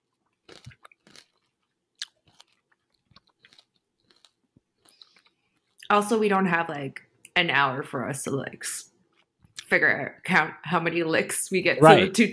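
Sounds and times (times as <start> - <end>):
hard candy lollipop bitten and chewed: 0.3 - 5.8
speech: 5.9 - 8.9, 9.7 - 12.3.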